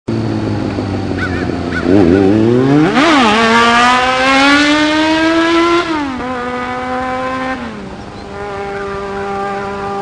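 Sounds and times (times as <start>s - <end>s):
Kawasaki ZX 7R motorcycle engine: 0.1s - 10.0s.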